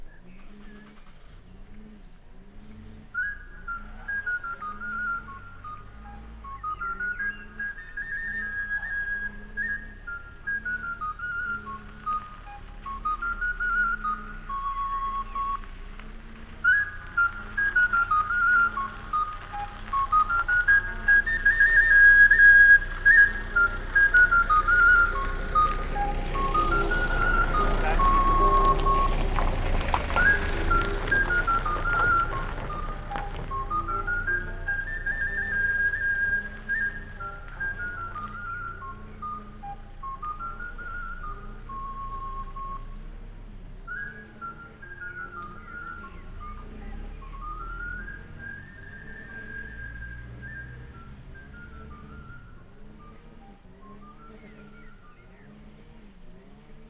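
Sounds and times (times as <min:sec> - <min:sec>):
car playing music in Szögliget: 0:00.0 - 0:56.8
greengrocer van in Szögliget: 0:00.0 - 0:56.8
lawnmower in Szögliget: 0:20.7 - 0:40.1.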